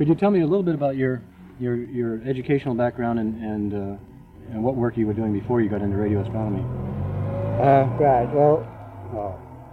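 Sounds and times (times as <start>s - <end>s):
speech: 0.0s - 7.0s, 7.6s - 9.5s
car passing on a nearby road: 0.0s - 9.7s.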